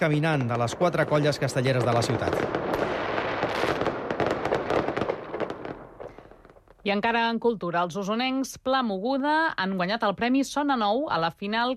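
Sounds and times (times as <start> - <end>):
speech: 0.0 - 3.1, 6.8 - 11.7
fireworks crackling and popping in a festival display: 0.0 - 7.4.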